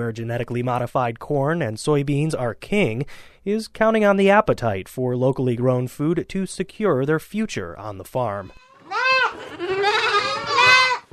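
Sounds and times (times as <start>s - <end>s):
speech: 0.0s - 8.7s
eight-week-old goat kids bleating in an Amish milking barn: 8.4s - 11.1s.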